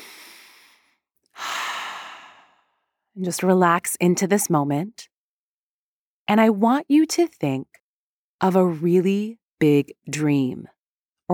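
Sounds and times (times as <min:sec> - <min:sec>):
deep breath in and out: 0:00.0 - 0:02.9
speech: 0:03.2 - 0:05.1, 0:06.3 - 0:07.8, 0:08.4 - 0:10.7.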